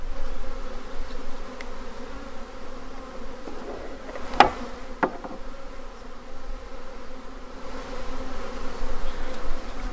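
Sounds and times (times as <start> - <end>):
swarm of honeybees buzzing around a microphone: 0.0 - 9.9
sharp knocks or taps: 3.4 - 5.5.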